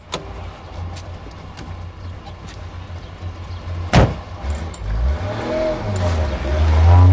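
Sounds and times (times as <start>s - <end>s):
steady low car engine rumble: 0.0s - 7.1s
car door thudding shut: 3.9s - 4.3s.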